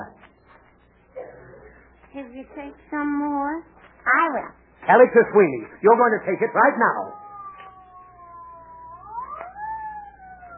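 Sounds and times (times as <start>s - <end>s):
speech: 2.2s - 7.2s
ambulance siren wailing: 7.0s - 10.5s.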